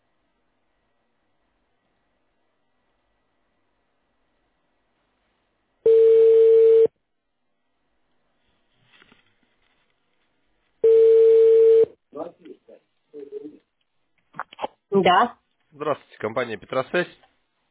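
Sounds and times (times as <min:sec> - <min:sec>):
telephone ringback tone while a callback connects to a customer: 0:05.9 - 0:06.9, 0:10.8 - 0:11.9
speech: 0:15.0 - 0:17.3.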